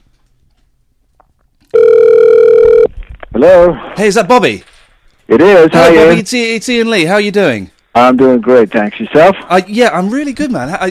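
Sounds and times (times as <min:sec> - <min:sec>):
American telephone ringback tone: 0:01.7 - 0:02.9
speech: 0:03.4 - 0:04.7, 0:05.3 - 0:10.8.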